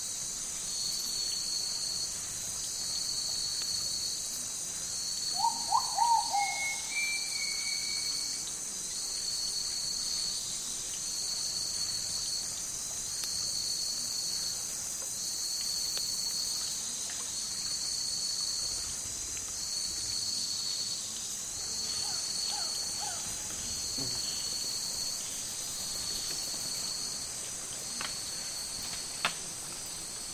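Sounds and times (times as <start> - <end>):
insect and cricket buzzing in the Amazon rainforest: 0.0 - 30.3
bird calls in the Amazon rainforest: 5.4 - 7.6.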